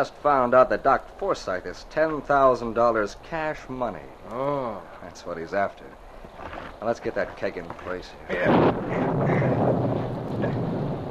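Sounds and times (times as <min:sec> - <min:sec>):
speech: 0:00.0 - 0:09.3
thunderstorm sound effect with rumbling and rain-like hiss: 0:08.3 - 0:11.0.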